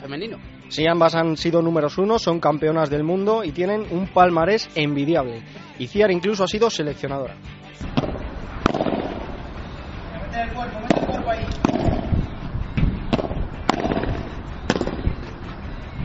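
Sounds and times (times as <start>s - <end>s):
speech: 0.1s - 8.1s, 10.5s - 11.9s
padel balls being struck in a women's pair training session: 7.8s - 9.6s, 10.8s - 15.5s.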